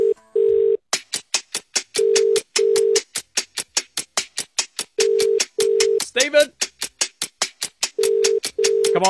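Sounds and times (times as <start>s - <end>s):
outgoing phone call ringback tone: 0.0s - 0.8s, 2.0s - 3.0s, 5.0s - 6.0s, 8.0s - 9.0s
fast loud rhythmic tapping beat: 0.9s - 9.0s
speech: 6.2s - 6.6s.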